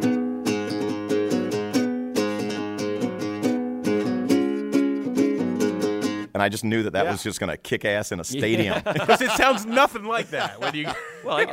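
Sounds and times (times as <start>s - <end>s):
riff on a nylon-string acoustic guitar: 0.0s - 6.4s
speech: 6.4s - 11.5s
laughter: 8.4s - 11.5s.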